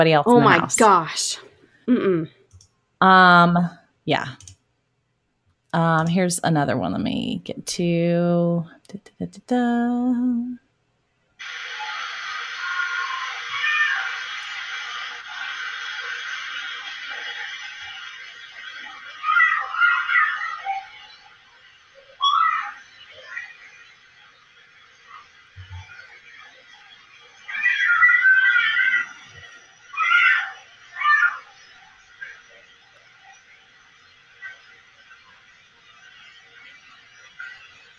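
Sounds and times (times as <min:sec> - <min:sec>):
speech: 0:00.0 - 0:02.4, 0:03.0 - 0:04.5, 0:05.7 - 0:10.6
children screaming on a played recording: 0:11.4 - 0:24.0, 0:27.4 - 0:32.4.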